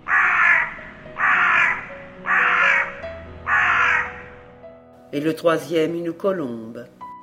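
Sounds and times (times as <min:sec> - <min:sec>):
crow cawing: 0:00.0 - 0:04.4
speech: 0:05.1 - 0:07.0.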